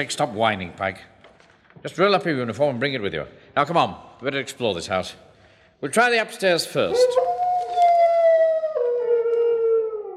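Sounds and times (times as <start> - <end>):
speech: 0.0 - 1.1, 1.8 - 7.2
hound howling: 6.9 - 10.1.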